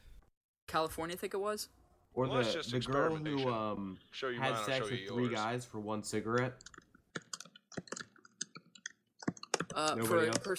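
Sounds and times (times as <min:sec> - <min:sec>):
speech: 0:00.7 - 0:06.8, 0:09.8 - 0:10.5
loud typing on a laptop keyboard: 0:06.6 - 0:10.5.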